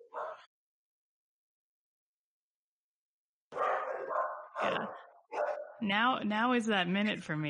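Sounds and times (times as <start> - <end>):
dogs barking at a house at an arriving plumber: 0.0 - 0.5, 3.5 - 5.8
speech: 4.6 - 5.1, 5.8 - 7.4.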